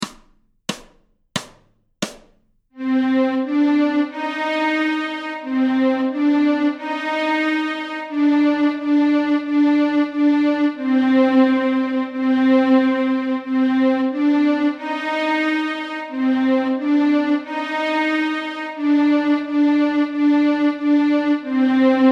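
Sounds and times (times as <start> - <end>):
violin strings in C minor: 2.8 - 22.1.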